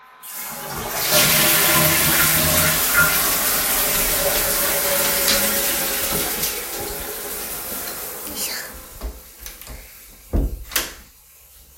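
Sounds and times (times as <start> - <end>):
toilet flushing: 0.0 - 11.1
toilet tank clicks and knocks as the tank settles: 1.1 - 8.2.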